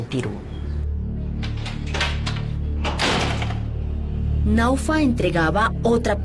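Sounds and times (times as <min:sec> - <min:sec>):
speech: 0:00.1 - 0:00.5, 0:04.4 - 0:06.2
metal security gate of a house swinging open with a clattering rattle: 0:01.3 - 0:03.8.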